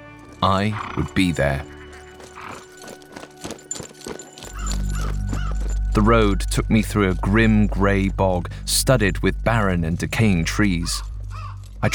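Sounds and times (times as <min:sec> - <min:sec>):
saddled horse hooves clip-clopping: 0:00.0 - 0:11.9
speech: 0:00.4 - 0:01.8, 0:06.0 - 0:11.1
horse loud drawn-out whinny: 0:00.6 - 0:01.2, 0:01.8 - 0:03.0, 0:04.4 - 0:05.8.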